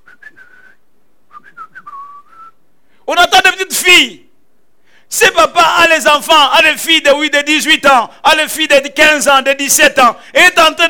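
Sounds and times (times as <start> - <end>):
person whistling while waiting in a parked car: 0.0 - 2.6
speech: 3.8 - 4.2, 5.1 - 10.8.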